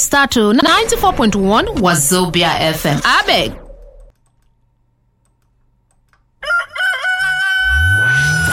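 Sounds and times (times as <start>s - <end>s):
speech: 0.0s - 3.6s
rooster crowing: 6.4s - 8.5s.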